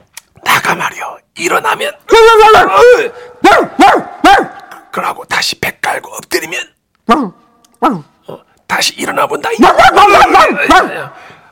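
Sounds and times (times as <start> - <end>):
speech: 0.7 - 11.4
person imitating dog barking with sharp vocal barks and yips: 2.2 - 4.9, 7.0 - 8.5, 9.5 - 11.2.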